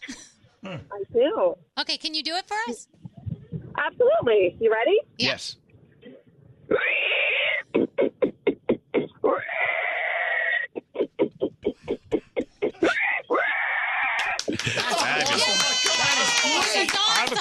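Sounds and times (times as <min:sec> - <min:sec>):
person imitating pig grunts: 0:00.0 - 0:00.9, 0:06.7 - 0:14.4
speech: 0:00.6 - 0:03.0, 0:03.8 - 0:05.6, 0:06.7 - 0:07.2
person imitating pig squeals: 0:06.7 - 0:14.4
laughter: 0:14.2 - 0:17.4.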